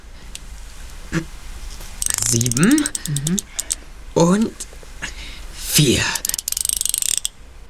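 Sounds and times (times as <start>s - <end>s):
speech: 1.1s - 1.4s, 2.3s - 3.6s, 4.2s - 5.2s, 5.8s - 6.2s
safe mechanism clicks: 2.0s - 3.8s, 6.2s - 7.4s
safe mechanism grinding rush of moving parts: 2.0s - 3.8s, 6.2s - 7.4s.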